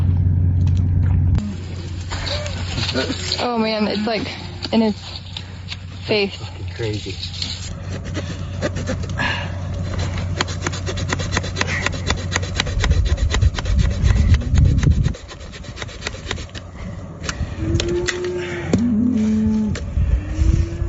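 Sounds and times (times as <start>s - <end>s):
low rumble: 0.0s - 20.8s
hand saw rasping through deer antler: 2.0s - 18.2s
speech: 2.9s - 5.3s, 6.1s - 7.4s, 8.7s - 9.6s.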